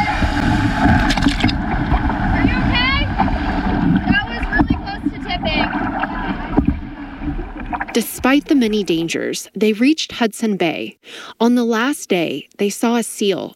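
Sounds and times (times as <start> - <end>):
gusty wind buffeting the microphone: 0.0 - 9.2
water sloshing around a canoe from paddles: 0.0 - 9.5
speech: 8.3 - 13.5.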